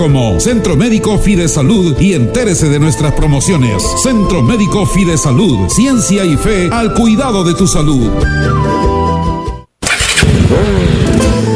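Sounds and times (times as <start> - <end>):
speech: 0.0 - 9.0, 10.2 - 11.5
motorcycle engine revving: 9.8 - 11.5.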